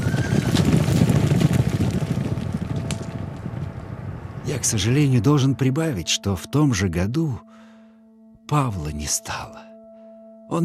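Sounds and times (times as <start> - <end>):
horses whinnying: 0.0 - 1.5
herd of horses galloping: 0.0 - 3.9
speech: 4.6 - 7.5, 8.5 - 9.7, 10.5 - 10.6.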